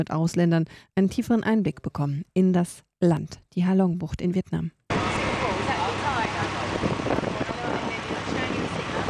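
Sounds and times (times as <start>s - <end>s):
speech: 0.0s - 4.8s
indistinct voices: 4.9s - 9.0s
motorboat engine rushing on open water in the bay: 4.9s - 9.0s
water splashing on open water: 4.9s - 9.0s
wind buffeting the microphone: 4.9s - 9.0s.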